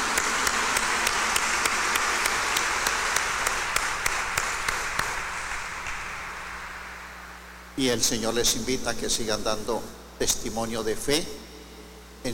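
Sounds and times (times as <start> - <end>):
crowd applauding in congratulation: 0.0 - 7.5
speech: 7.8 - 11.4.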